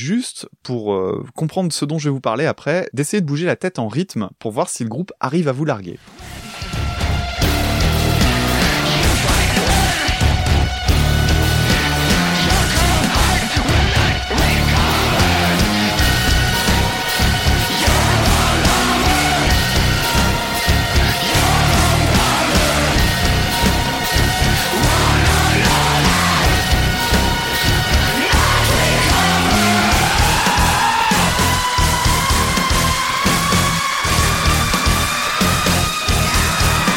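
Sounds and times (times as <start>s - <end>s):
speech: 0.0s - 6.5s
blackjazz metal track with distorted guitars and busy drums: 6.0s - 36.9s.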